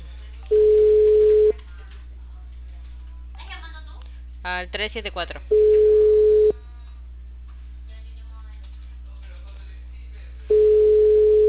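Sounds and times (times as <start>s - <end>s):
low hum: 0.0s - 11.4s
ringback tone during an unanswered telephone call: 0.5s - 1.6s, 5.5s - 6.6s, 10.5s - 11.4s
speech: 4.4s - 5.8s.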